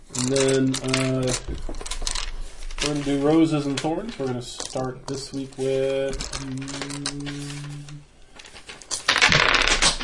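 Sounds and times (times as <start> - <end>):
handful of dice clattering across a surface: 0.1 - 7.6, 8.4 - 10.0
speech: 0.2 - 2.0, 2.8 - 8.1.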